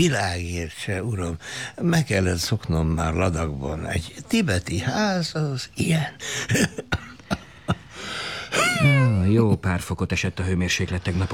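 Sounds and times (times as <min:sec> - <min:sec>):
constant hiss: 0:00.0 - 0:11.3
speech: 0:00.0 - 0:11.3
patient coughing dry sharp coughs in a cold house: 0:06.5 - 0:07.9.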